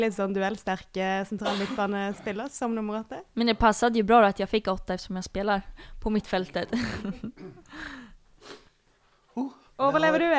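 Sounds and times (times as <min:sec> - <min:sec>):
speech: 0:00.0 - 0:08.6, 0:09.4 - 0:10.3
person coughing in a harsh raspy coughing fit: 0:01.4 - 0:02.4, 0:07.4 - 0:07.7.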